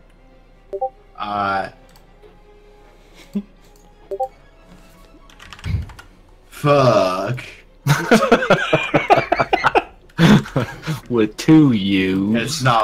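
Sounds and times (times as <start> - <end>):
speech: 1.2 - 1.8, 3.2 - 3.5, 6.6 - 8.8, 10.6 - 12.8
typing on a computer keyboard: 5.3 - 6.1
laughter: 7.8 - 11.1.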